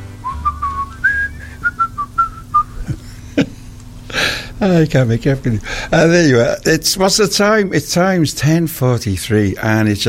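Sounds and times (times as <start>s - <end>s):
low steady hum: 0.0s - 10.0s
person whistling a short bright melody: 0.2s - 2.8s
speech: 4.6s - 10.0s.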